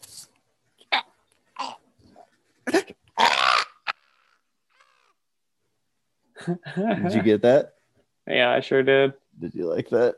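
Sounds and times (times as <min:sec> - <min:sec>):
crow cawing: 0:03.2 - 0:05.0
speech: 0:06.4 - 0:10.1.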